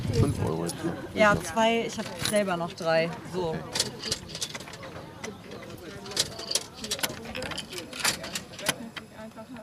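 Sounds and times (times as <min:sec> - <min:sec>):
speech: 0:00.2 - 0:03.9
ticket machine printing a ticket: 0:03.8 - 0:09.1.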